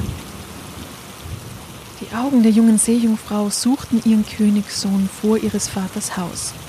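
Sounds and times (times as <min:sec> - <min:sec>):
deep thunder rumbling: 0:00.0 - 0:03.0
steady hissing rain pouring: 0:00.0 - 0:06.6
speech: 0:02.0 - 0:06.6.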